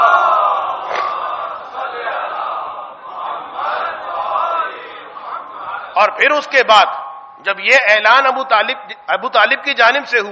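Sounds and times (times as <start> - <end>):
large audience chanting a durood salutation in unison: 0.0 - 6.2
speech: 6.1 - 10.3.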